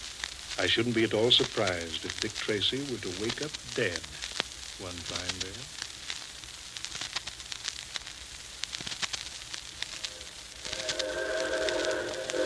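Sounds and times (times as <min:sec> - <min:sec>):
speech: 0:00.6 - 0:05.8
4-6-4 Hudson type locomotive arriving: 0:10.1 - 0:12.4
bright sustained tone: 0:10.1 - 0:12.4.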